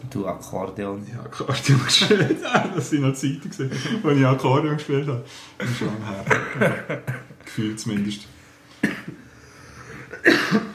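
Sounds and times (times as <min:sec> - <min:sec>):
speech: 0:00.1 - 0:08.4
laughter: 0:01.6 - 0:04.5, 0:05.6 - 0:07.5
person with strained aching lungs coughing harshly: 0:08.8 - 0:09.3, 0:09.9 - 0:10.7.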